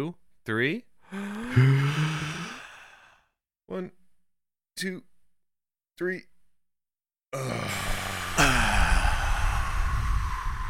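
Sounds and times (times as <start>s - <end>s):
speech: 0.0s - 2.4s, 3.7s - 4.0s, 4.8s - 5.1s, 6.0s - 6.3s, 7.3s - 8.5s
short vocal sounds: 1.1s - 3.1s, 7.4s - 10.6s
voiced sigh-like slow exhale from a breathing exercise: 1.1s - 3.3s, 7.4s - 10.6s.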